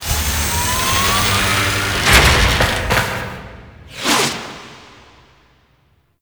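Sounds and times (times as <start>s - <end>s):
ship undocking for drop off: 0.2s - 4.8s.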